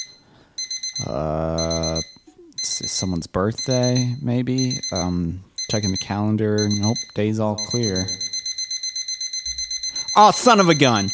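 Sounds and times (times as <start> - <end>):
alarm clock beeping: 0.0 - 11.1
speech: 1.0 - 2.1, 2.8 - 8.3, 10.2 - 11.1.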